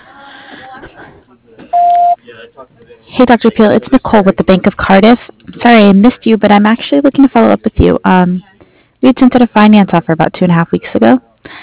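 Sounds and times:
speech: 0.5s - 11.6s
voicemail answering machine beep: 1.7s - 2.2s.

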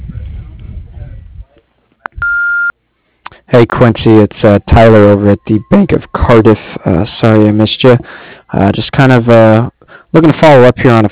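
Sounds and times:
dental lab answering machine electronic beep: 2.2s - 2.7s
voice giving answering machine greeting: 3.3s - 11.0s
speech: 3.5s - 11.0s.

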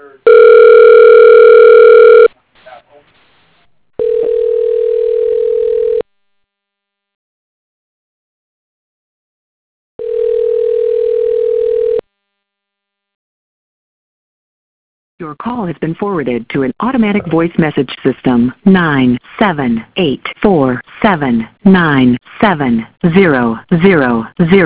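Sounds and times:
telephone dial tone: 0.3s - 2.3s, 4.0s - 6.0s, 10.0s - 12.1s
speech: 15.4s - 24.6s.

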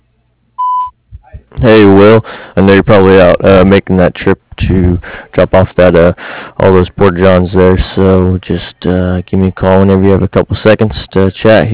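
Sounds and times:
answering machine beep: 0.6s - 0.9s
speech: 1.6s - 11.7s.

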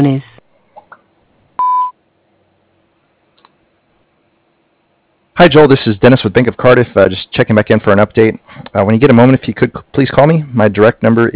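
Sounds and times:
speech: 0.0s - 0.3s, 5.4s - 11.3s
voicemail system recording tone beep: 1.6s - 1.9s.

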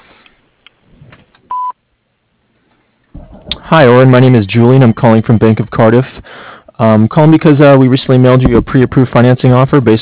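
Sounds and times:
faint noise: 0.0s - 9.9s
voicemail tone electronic beep: 1.5s - 1.8s
speech: 3.7s - 9.9s.

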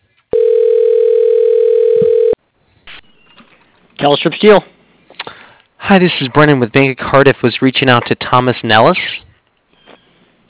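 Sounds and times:
telephone dialing tone: 0.3s - 2.4s
speech: 4.0s - 4.7s, 5.9s - 9.2s.

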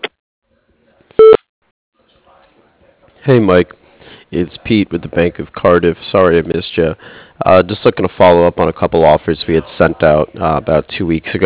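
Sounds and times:
voicemail beep: 1.2s - 1.4s
speech: 3.2s - 11.4s.

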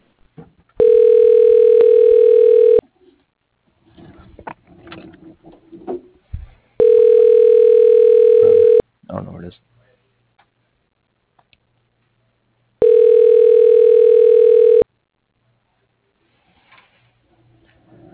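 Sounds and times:
ringback tone from an automated telephone system dialing an extension: 0.8s - 2.8s, 6.8s - 8.8s, 12.8s - 14.8s.

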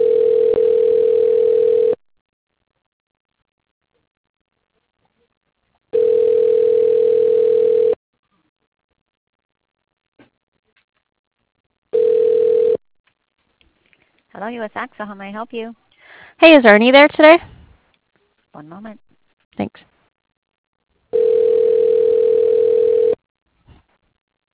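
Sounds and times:
telephone line tone while a call is transferred: 0.0s - 2.0s, 6.0s - 8.0s, 12.0s - 12.8s, 21.1s - 23.2s
speech: 14.5s - 15.8s, 16.4s - 17.5s, 18.6s - 19.0s.

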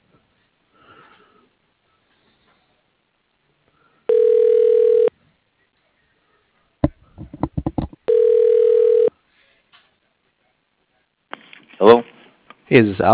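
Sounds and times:
telephone ringback tone while an office call is transferred: 4.1s - 5.1s, 8.1s - 9.1s
quick cluster of clicks and taps: 6.8s - 8.0s
speech: 12.7s - 13.1s.

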